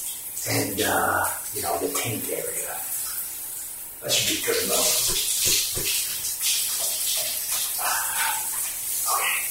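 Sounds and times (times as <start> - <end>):
running water while someone washes their body: 0.0 - 9.4
speech: 0.4 - 2.9, 4.0 - 6.0.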